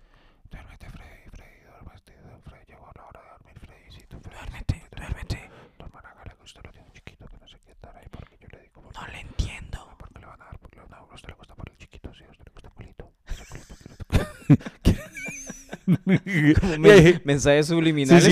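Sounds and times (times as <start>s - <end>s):
person whispering in ASMR style: 0.5s - 13.8s, 18.1s - 18.3s
laughter: 13.3s - 18.3s
speech: 14.5s - 14.8s, 15.9s - 18.3s.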